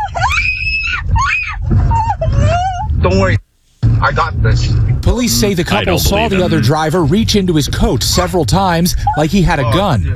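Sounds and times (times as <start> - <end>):
woman screaming from a car's passenger seat: 0.0 - 2.9
low rumble from inside the car: 0.0 - 10.1
speech: 3.0 - 3.4, 4.0 - 10.1.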